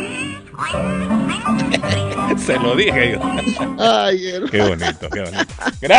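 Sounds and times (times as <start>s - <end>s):
piglet crying in a high-pitched whimper after a fall: 0.0s - 3.8s
laughter: 1.5s - 5.9s
speech: 1.7s - 5.9s.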